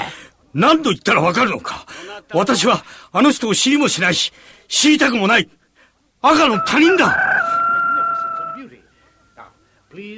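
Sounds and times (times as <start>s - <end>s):
speech: 0.5s - 5.6s, 6.2s - 7.3s, 9.9s - 10.1s
voices murmuring and speaking: 6.2s - 10.1s
rooster crowing: 6.3s - 9.2s.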